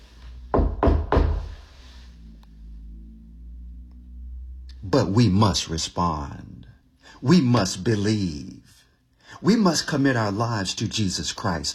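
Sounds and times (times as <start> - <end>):
low steady hum: 0.0 - 11.7
firm knocking on a door: 0.5 - 1.5
speech: 4.9 - 11.7.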